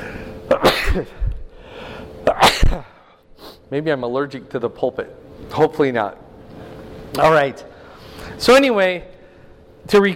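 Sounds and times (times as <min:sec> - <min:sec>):
person sneezing: 0:00.5 - 0:01.2, 0:02.2 - 0:03.6
speech: 0:00.9 - 0:01.2, 0:03.7 - 0:06.2, 0:07.1 - 0:07.7, 0:08.3 - 0:09.1, 0:09.8 - 0:10.1.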